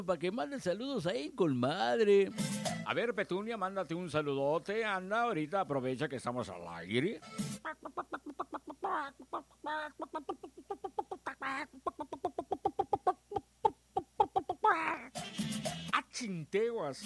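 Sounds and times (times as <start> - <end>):
speech: 0.0 - 12.5, 14.7 - 17.0
hen clucking: 7.5 - 15.8.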